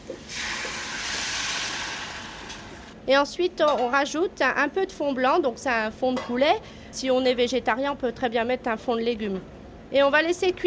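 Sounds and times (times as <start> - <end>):
hot pan of oil and aromatics sizzling as deglazed with savagnin wine: 0.1 - 3.0
speech: 3.1 - 10.6.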